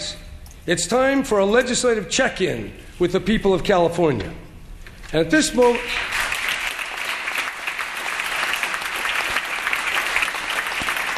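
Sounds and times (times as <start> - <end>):
speech: 0.7 - 4.5, 5.1 - 6.2
legislators applauding at a California legislative address: 5.6 - 11.1.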